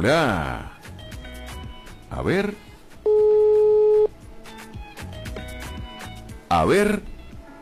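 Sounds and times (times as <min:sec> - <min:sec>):
speech: 0:00.0 - 0:00.7, 0:02.1 - 0:02.7, 0:06.5 - 0:07.1
ringing tone of an outgoing telephone call: 0:03.1 - 0:04.1.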